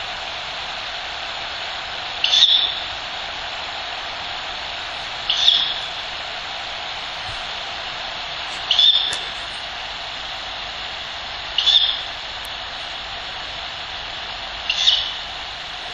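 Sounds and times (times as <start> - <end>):
continuous hiss: 0.0 - 15.9
Ural Owl chick screeching hisses: 2.2 - 2.9, 5.2 - 6.1, 8.5 - 9.7, 11.5 - 12.2, 14.6 - 15.3.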